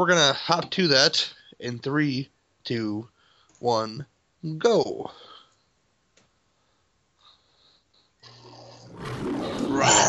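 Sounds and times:
speech: 0.0 - 5.3, 9.8 - 10.0
lion roaring in a film studio logo: 8.2 - 10.0.

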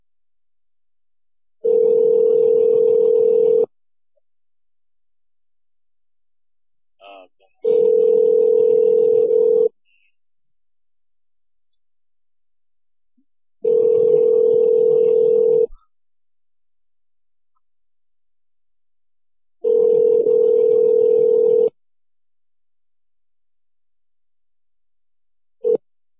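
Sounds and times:
outgoing phone call ringback tone: 1.6 - 3.7, 7.6 - 9.7, 13.6 - 15.7, 19.6 - 21.7.

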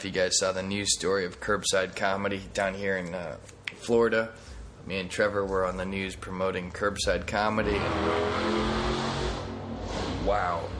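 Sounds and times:
speech: 0.0 - 9.0, 10.3 - 10.7
car engine revving as the car peels out: 7.5 - 10.7.

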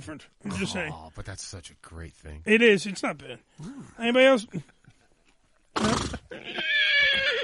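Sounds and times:
speech: 0.0 - 4.8, 5.8 - 6.7
horse neighing: 5.8 - 7.4.

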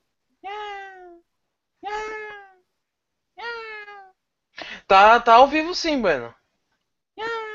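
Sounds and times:
cat meowing: 0.4 - 1.2, 1.8 - 2.6, 3.4 - 4.2, 7.2 - 7.5
speech: 4.9 - 6.4.

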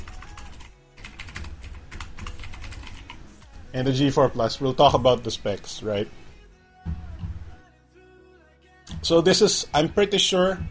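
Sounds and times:
rapid typing on a computer keyboard to enter a search: 0.0 - 3.2
speech: 3.7 - 6.2, 9.1 - 10.6.

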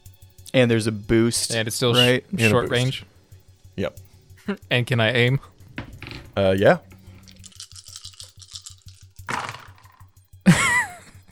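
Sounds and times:
speech: 0.5 - 3.2, 3.8 - 5.5, 6.4 - 6.9
dice shaken in a hand or cup: 7.2 - 10.1.

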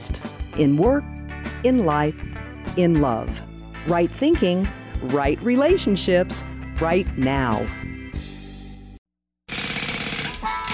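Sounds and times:
speech: 0.1 - 7.9
jackhammer pounding with a grinding metallic edge: 9.5 - 10.7.

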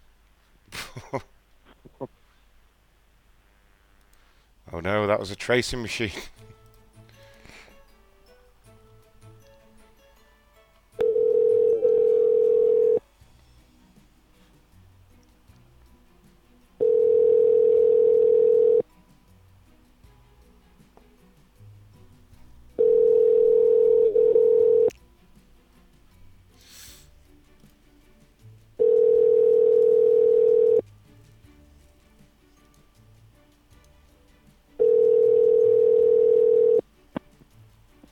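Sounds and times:
speech: 1.0 - 2.2, 4.7 - 6.6
electronic phone tone from a dialed phone number: 11.0 - 13.0, 16.8 - 18.8, 22.8 - 24.9, 28.8 - 30.8, 34.8 - 36.8.

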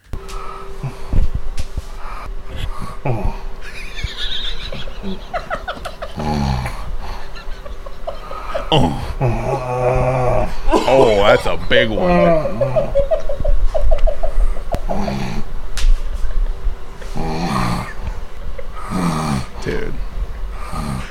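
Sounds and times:
sleeping person snoring: 0.2 - 1.3, 1.9 - 3.6, 5.0 - 7.4, 8.1 - 11.3, 11.9 - 13.0, 14.3 - 15.5, 17.0 - 21.1
sleeping person moaning and groaning: 0.4 - 1.3, 2.0 - 3.5, 6.0 - 7.4, 8.1 - 13.0, 14.3 - 15.5, 17.0 - 20.0, 20.6 - 21.1
laughter: 2.6 - 15.5, 16.2 - 19.8
speech: 8.7 - 13.2.

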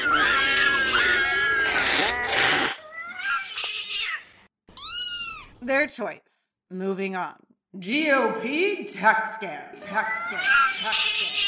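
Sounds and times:
feral cats yowling and screeching: 0.0 - 5.5, 10.1 - 11.4
speech: 5.8 - 11.4.

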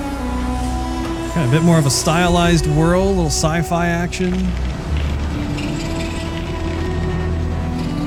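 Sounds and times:
elevator mechanical drone in a sci-fi video game: 0.2 - 7.9
low hum of a ship descending on an elevator in a video game: 0.6 - 7.8
speech: 1.4 - 4.8.

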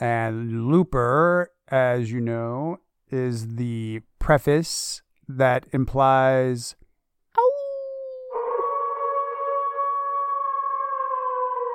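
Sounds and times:
speech: 0.0 - 6.8
single long sustained wolf howl: 8.3 - 11.7.

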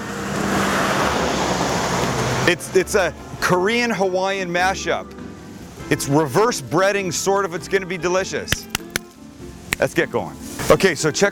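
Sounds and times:
vehicle passing on a road beside an outdoor cooking spot in Kauai: 0.0 - 3.4
speech: 2.5 - 5.2, 5.9 - 8.7, 9.8 - 11.3.

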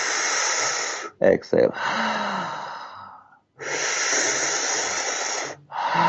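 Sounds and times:
breaths drawn through tightly pursed lips: 0.0 - 1.2, 1.8 - 6.0
speech: 1.2 - 2.0.

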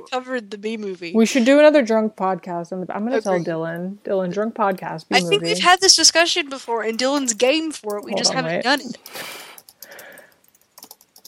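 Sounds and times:
speech: 0.0 - 10.0
typing on a computer keyboard: 6.8 - 8.1, 8.7 - 11.2.

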